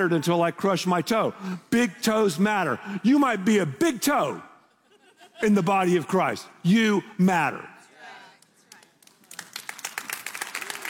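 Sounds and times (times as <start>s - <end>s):
speech: 0.0s - 4.5s, 5.4s - 7.7s
laughter: 4.6s - 6.2s
sharp hand claps: 8.4s - 10.8s.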